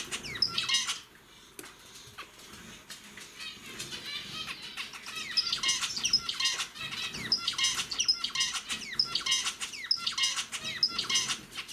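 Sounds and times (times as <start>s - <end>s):
zebra finch singing nasal buzzy chirps: 0.0s - 1.1s, 3.9s - 11.7s.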